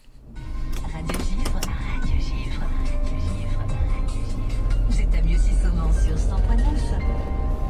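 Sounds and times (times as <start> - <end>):
car engine and road rumble heard from inside a driving car: 0.0 - 7.6.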